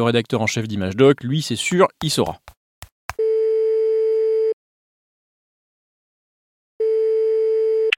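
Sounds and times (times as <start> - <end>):
speech: 0.0 - 2.6
telephone line tone while placing a call: 3.2 - 4.6, 6.8 - 7.9.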